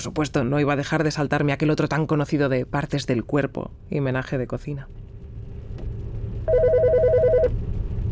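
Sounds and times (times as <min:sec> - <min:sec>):
speech: 0:00.0 - 0:05.1
low rumbling hum: 0:00.0 - 0:08.1
telephone ringing in a rapid trilling burst: 0:06.5 - 0:07.5.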